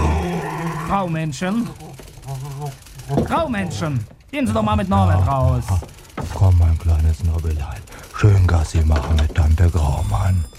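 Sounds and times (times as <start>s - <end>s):
dog growling low: 0.0s - 4.1s
speech: 0.9s - 10.5s.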